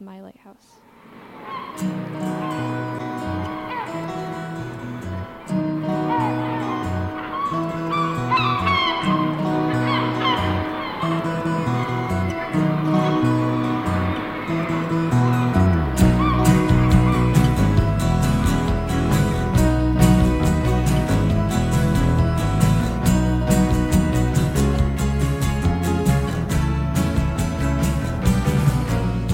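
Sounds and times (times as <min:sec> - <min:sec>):
seagulls crying: 0:01.3 - 0:24.6
gentle band intro: 0:01.9 - 0:29.3.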